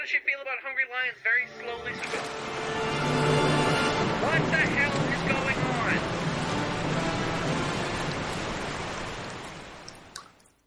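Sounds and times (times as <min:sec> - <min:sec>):
speech: 0:00.0 - 0:02.9
rushing water roar of sea parting: 0:02.1 - 0:10.6
faint splashes: 0:03.9 - 0:10.6.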